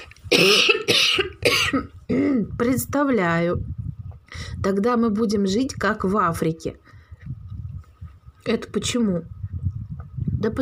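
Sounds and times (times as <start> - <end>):
man coughing: 0.3 - 2.4
speech: 0.4 - 1.3, 2.6 - 6.8, 8.4 - 9.4, 10.4 - 10.6.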